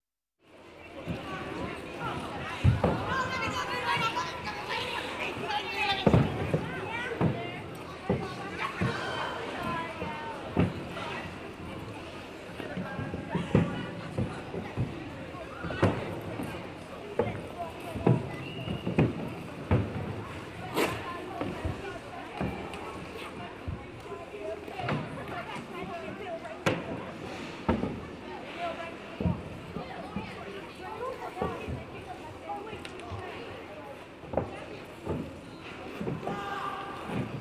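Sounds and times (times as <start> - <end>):
sport ice skating: 0.8 - 37.3.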